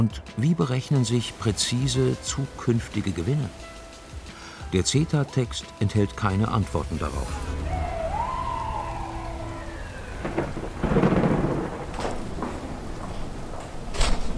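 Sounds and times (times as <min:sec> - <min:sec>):
speech: 0:00.0 - 0:03.8, 0:04.7 - 0:07.8
steady rain hiss of a storm front from the North Atlantic over a city: 0:00.4 - 0:14.3
wailing siren-like tone: 0:07.2 - 0:10.9
low rolling thunder rumbles: 0:07.2 - 0:14.3.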